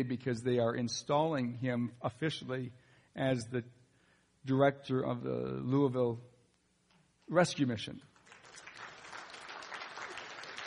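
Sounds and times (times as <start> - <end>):
speech: 0.0 - 3.8, 4.4 - 6.3, 7.3 - 8.1
audience applause at a gathering announcing a new rescue mission director: 8.2 - 10.6.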